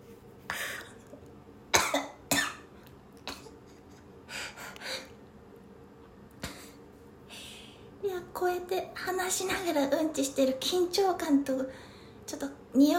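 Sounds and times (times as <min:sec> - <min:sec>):
person coughing set off by a smell while on the toilet: 0:01.8 - 0:02.7
quiet breaths: 0:03.7 - 0:05.2, 0:06.4 - 0:08.0, 0:11.6 - 0:12.3
speech: 0:08.4 - 0:12.9.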